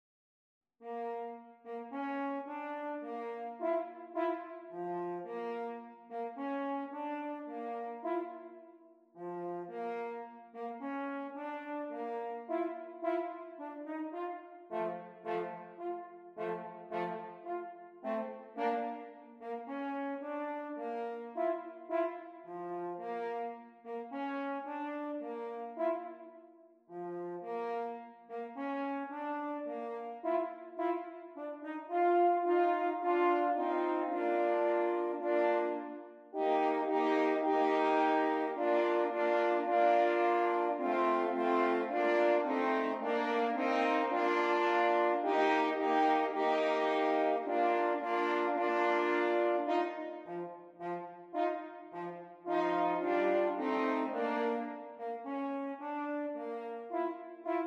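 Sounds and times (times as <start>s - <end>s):
horn trio playing: 0.9s - 8.6s, 9.2s - 26.2s, 26.9s - 57.6s.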